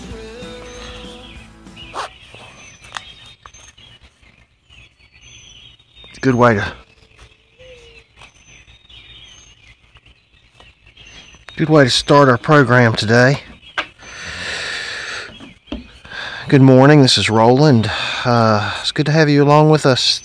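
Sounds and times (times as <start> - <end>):
birds chirping outdoors: 0.0 - 20.2
sharp dog bark: 1.9 - 2.2
speech: 6.2 - 6.8, 11.6 - 13.5, 16.5 - 20.2.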